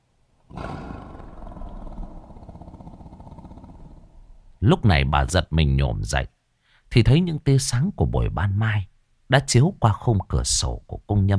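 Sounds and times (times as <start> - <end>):
tiger roaring: 0.5 - 4.6
speech: 4.6 - 11.3.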